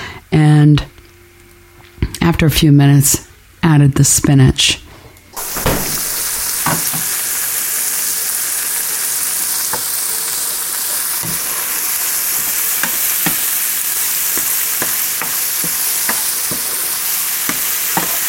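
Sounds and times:
speech: 0.3s - 0.9s, 2.3s - 4.8s
leeks sautéing in olive oil in a pan on the stove: 5.4s - 18.2s.

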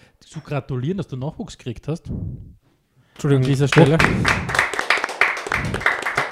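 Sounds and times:
speech: 0.3s - 2.6s, 3.2s - 4.7s
several people clapping in applause: 3.4s - 6.3s.

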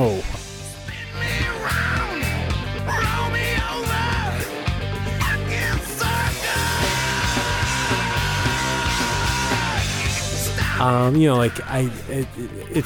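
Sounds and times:
loud dense rock band with distorted guitars and pounding drums: 0.0s - 12.6s
harsh screamed vocal: 0.9s - 4.5s, 5.2s - 11.7s
speech: 10.9s - 12.8s.

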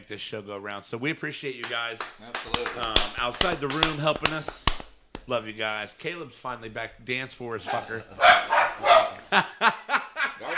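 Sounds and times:
speech: 0.1s - 9.9s
dogs barking excitedly: 7.7s - 9.3s
laughter: 9.1s - 10.5s.

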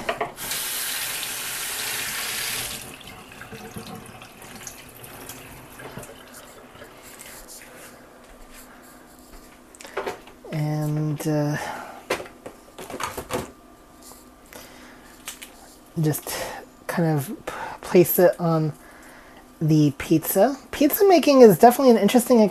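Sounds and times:
tap water running over fresh broccoli in a sink: 0.4s - 7.2s
speech: 11.2s - 11.7s, 16.0s - 16.4s, 17.0s - 18.8s, 19.6s - 22.4s.

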